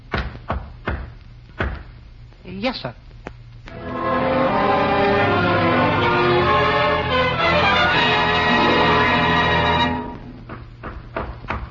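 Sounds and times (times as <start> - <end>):
low hum aboard a ship: 0.0 - 11.6
firm knocks on a stateroom door aboard a ship: 0.1 - 1.9, 10.5 - 11.6
speech: 2.5 - 3.0.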